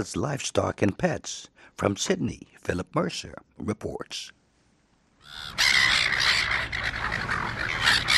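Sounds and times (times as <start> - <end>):
speech: 0.0 - 4.4
silver gulls squawking in Australia: 5.2 - 8.1.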